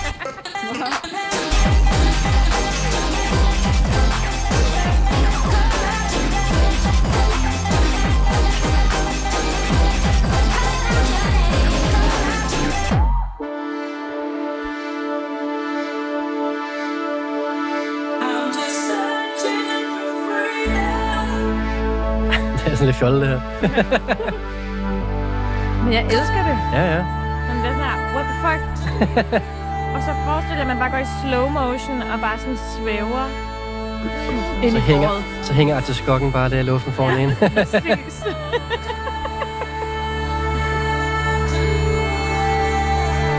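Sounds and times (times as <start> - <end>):
laughter: 0.0 - 1.4, 22.3 - 24.6, 28.8 - 29.7, 34.0 - 40.3
deliberately overdriven distorted music with pounding beats: 0.0 - 31.0, 33.4 - 41.8
sustained droning distorted section with heavy bass: 1.5 - 13.1, 20.7 - 43.3
speech: 23.0 - 24.6, 25.9 - 38.9.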